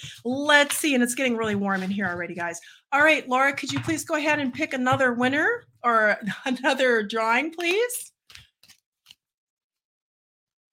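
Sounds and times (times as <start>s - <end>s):
speech: 0.0s - 8.4s
deck of oracle cards being shuffled: 8.2s - 9.3s.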